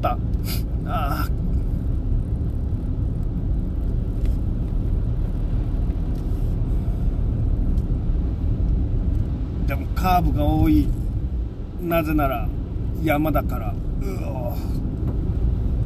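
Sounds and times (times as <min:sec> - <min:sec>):
speech: 0:00.0 - 0:01.4, 0:09.7 - 0:11.0, 0:11.8 - 0:14.8
car engine and road rumble on rural road heard from inside: 0:00.0 - 0:15.8.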